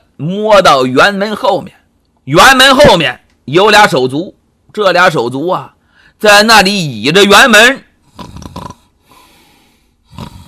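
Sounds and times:
speech: 0:00.2 - 0:08.3
voice imitating snoring of sleeping guards: 0:08.1 - 0:08.9, 0:10.0 - 0:10.4.

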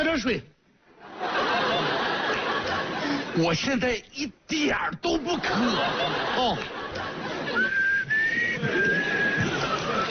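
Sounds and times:
speech: 0:00.2 - 0:00.6, 0:03.4 - 0:07.8
laughter: 0:01.0 - 0:03.4, 0:05.2 - 0:10.0
person whistling a short clear melody inside an elevator: 0:07.6 - 0:10.0.

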